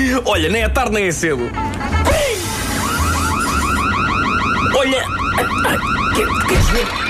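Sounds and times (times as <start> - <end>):
speech: 0.1 - 2.5, 4.7 - 7.0
electronic fire alarm wailing: 2.3 - 7.0.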